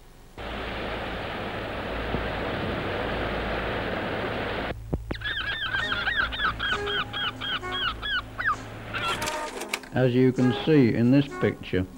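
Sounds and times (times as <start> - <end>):
faint low hum: 0.0 - 9.4
loud steady rushing noise: 0.4 - 4.7
seagulls calling following a boat with freshly caught fish: 5.1 - 9.6
speech: 10.0 - 11.9.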